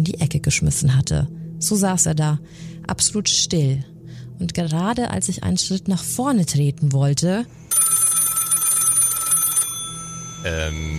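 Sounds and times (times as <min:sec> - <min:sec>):
speech: 0:00.0 - 0:07.9, 0:10.4 - 0:10.9
telephone bell ringing: 0:07.7 - 0:10.9.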